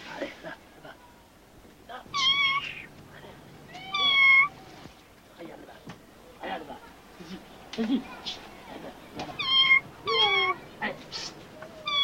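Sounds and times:
indistinct voices murmuring: 0:00.0 - 0:12.0
frightened cat meowing: 0:02.1 - 0:02.9, 0:03.7 - 0:04.6, 0:09.3 - 0:10.6, 0:11.8 - 0:12.0
speech: 0:07.8 - 0:08.1.

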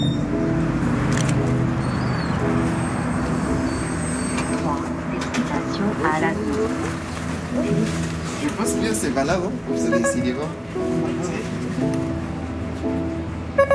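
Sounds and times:
bus heavy diesel engine rumbling while pulling in: 0:00.0 - 0:13.7
faint chirps and squeaks: 0:01.8 - 0:02.4
speech: 0:08.5 - 0:12.1.

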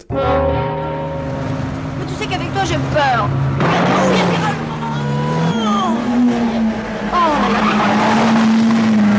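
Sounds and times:
speech: 0:00.1 - 0:00.4, 0:02.3 - 0:04.5
car engine roaring at high revs through turns: 0:00.8 - 0:09.1
car tires squealing through turns: 0:01.1 - 0:09.1.

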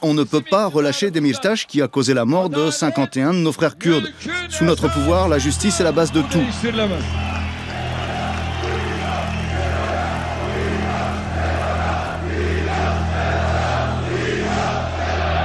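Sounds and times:
speech: 0:00.0 - 0:07.4
huge crowd roaring a rhythmic two-word chant: 0:04.2 - 0:15.4.

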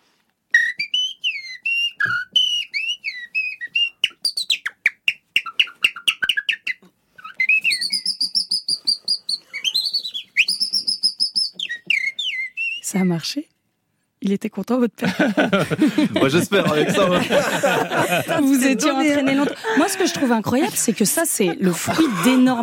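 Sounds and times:
person whistling an imitation of common blackbird song: 0:00.6 - 0:13.1
speech: 0:12.9 - 0:13.6, 0:14.2 - 0:22.6
laughter: 0:15.0 - 0:22.6.

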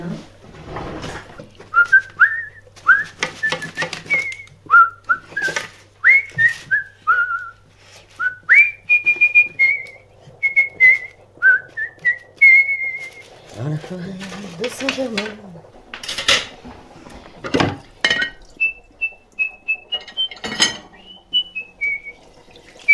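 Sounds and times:
dishes clattering and splashing while being washed: 0:00.0 - 0:04.5, 0:05.1 - 0:06.7, 0:08.9 - 0:22.9
low constant hum: 0:00.0 - 0:22.9
person whistling a tune while washing dishes: 0:01.7 - 0:07.6, 0:08.2 - 0:13.3, 0:18.6 - 0:22.9.

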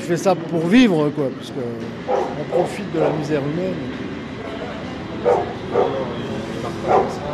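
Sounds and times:
low noise: 0:00.0 - 0:07.3
speech: 0:00.1 - 0:04.0, 0:05.2 - 0:07.3
narcotics sniffer dog barking during a bag check: 0:02.1 - 0:02.4, 0:05.2 - 0:06.1, 0:06.8 - 0:07.2.

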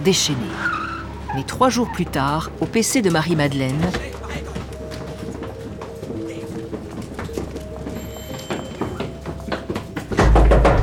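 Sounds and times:
speech: 0:00.0 - 0:04.2
hurried footsteps pounding up stairs: 0:02.2 - 0:10.8
scattered thuds and knocks: 0:08.9 - 0:10.8
police forcing open the door of a hideout with a heavy crash: 0:10.1 - 0:10.8.

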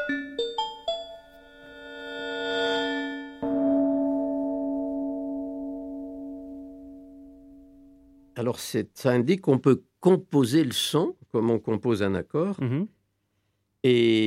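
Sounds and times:
synthesized gong-like bell tones in electronic music: 0:00.0 - 0:08.3
synthesized gong strike with bright steady partials ringing: 0:01.4 - 0:07.9
speech: 0:08.4 - 0:13.0, 0:13.8 - 0:14.2.

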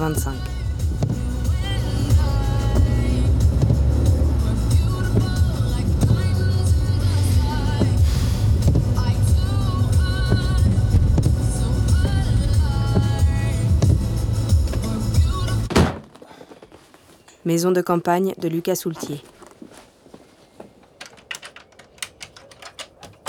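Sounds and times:
speech: 0:00.0 - 0:00.6, 0:17.5 - 0:19.3
personal car engine running: 0:00.0 - 0:15.7.

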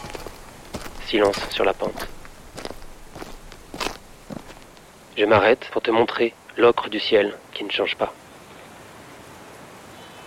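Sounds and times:
shoes crunching over pine needles and ice on a downhill slope: 0:00.0 - 0:05.2
speech: 0:01.1 - 0:02.2, 0:05.2 - 0:08.2.

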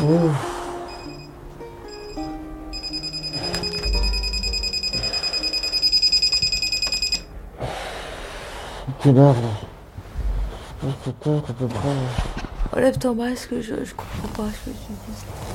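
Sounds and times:
speech: 0:00.0 - 0:00.5, 0:09.0 - 0:09.6, 0:11.1 - 0:15.4
alarm clock beeping: 0:00.9 - 0:07.3.

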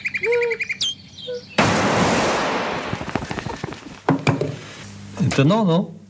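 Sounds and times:
nightingale singing whistles and trills: 0:00.0 - 0:01.6
loud sustained crackling roar with sharp pops: 0:01.6 - 0:04.1
speech: 0:05.4 - 0:06.0.

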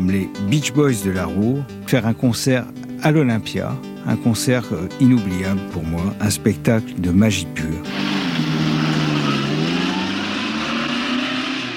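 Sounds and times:
speech: 0:00.0 - 0:08.5
car engine revving: 0:07.8 - 0:11.7.

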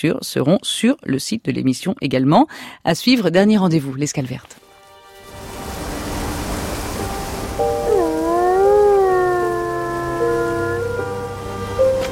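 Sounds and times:
speech: 0:00.0 - 0:04.6
wolf pack howling together: 0:07.6 - 0:11.9.

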